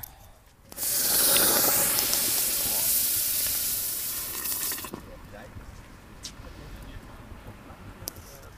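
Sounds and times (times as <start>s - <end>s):
hot basalt stone sizzling in boiling wort: 0.7s - 5.1s.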